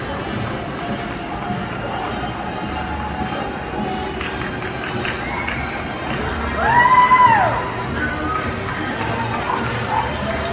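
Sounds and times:
crowd cheering from balconies of high-rise buildings: 0.3 - 10.5
loud arcing whistle or whoop: 6.6 - 7.6.

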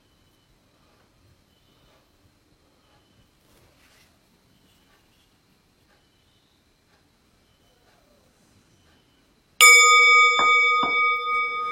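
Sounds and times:
meditation bell struck and ringing: 9.6 - 11.7.

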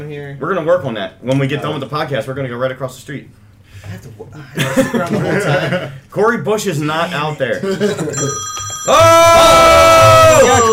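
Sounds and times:
speech: 0.0 - 10.7
laughter: 4.4 - 6.0, 7.5 - 8.4
telephone ringing with a bright electronic ring: 8.1 - 10.7.

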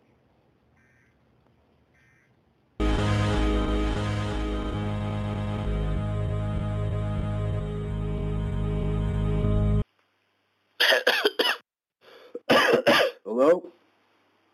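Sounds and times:
loud droning tone: 2.8 - 9.8
person coughing in harsh bursts: 10.8 - 11.6, 12.3 - 13.3.

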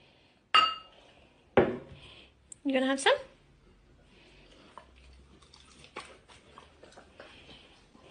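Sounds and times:
glasses clinking in a toast: 0.6 - 1.0
speech: 2.6 - 3.3
dog chewing food: 4.4 - 8.0.

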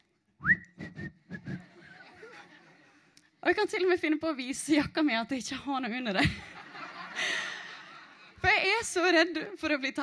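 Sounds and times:
person whistling a casual carefree tune: 0.4 - 1.6
laughter: 1.4 - 3.2, 6.2 - 8.4
speech: 3.5 - 6.5, 8.9 - 10.0.

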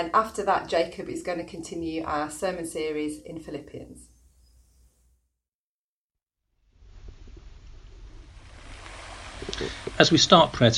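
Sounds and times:
speech: 0.0 - 4.1, 10.0 - 10.7
waves gently lapping on a shore: 8.4 - 10.7.

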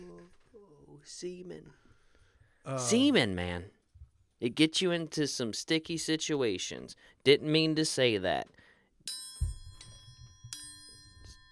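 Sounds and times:
speech: 1.0 - 1.8, 2.6 - 3.8, 4.4 - 9.2
bright metallic chime: 9.0 - 11.5.

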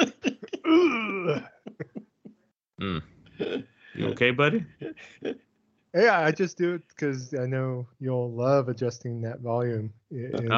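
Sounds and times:
person clearing throat loudly: 0.0 - 1.6, 2.8 - 4.3
person grunting: 0.0 - 1.6, 2.8 - 4.2
speech: 1.3 - 1.5, 2.8 - 3.1, 4.2 - 5.4, 6.0 - 10.5.

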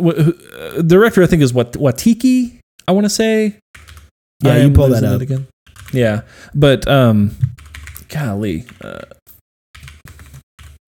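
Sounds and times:
speech: 0.0 - 9.2
typing on a clicky computer keyboard: 7.4 - 9.2, 9.8 - 10.8.

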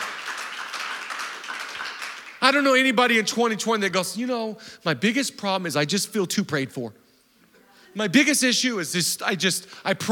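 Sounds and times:
large crowd applauding: 0.0 - 2.6
speech: 2.4 - 7.0, 8.0 - 10.1.

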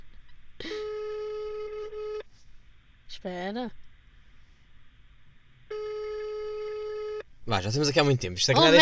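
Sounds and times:
phone call ringing tone while waiting for an answer: 0.7 - 2.2, 5.7 - 7.3
speech: 3.2 - 3.8, 7.5 - 8.8.

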